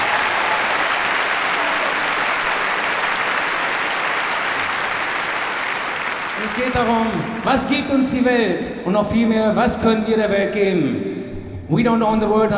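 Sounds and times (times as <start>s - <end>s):
audience applause at a live concert: 0.0s - 8.1s
speech: 6.5s - 12.5s.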